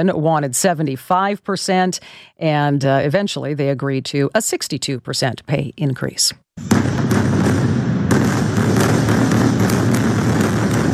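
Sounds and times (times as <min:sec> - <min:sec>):
speech: 0:00.0 - 0:07.0
airstrike explosions in the southern suburbs of Beirut: 0:06.6 - 0:10.9.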